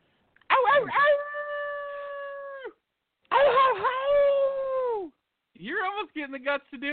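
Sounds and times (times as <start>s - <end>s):
man imitating a howl with his voice: 0.5s - 5.2s
speech: 6.0s - 6.9s.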